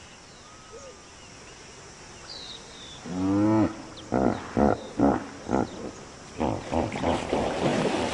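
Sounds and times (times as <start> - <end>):
hippopotamuses grunting in water: 3.0 - 7.7.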